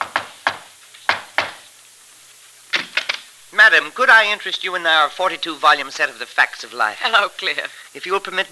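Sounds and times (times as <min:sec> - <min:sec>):
sharp knocking on an apartment door: 0:00.0 - 0:01.6
speech: 0:03.5 - 0:08.5.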